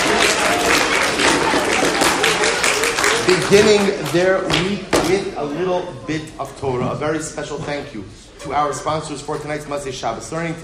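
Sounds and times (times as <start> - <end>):
audience applauding children in a synagogue: 0.0 - 4.4
speech: 3.3 - 10.6.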